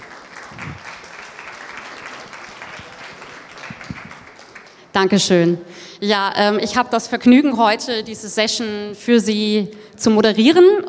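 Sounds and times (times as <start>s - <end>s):
audience applauding to welcome a technology journalist onto the stage: 0.0s - 4.9s
speech: 5.0s - 10.8s.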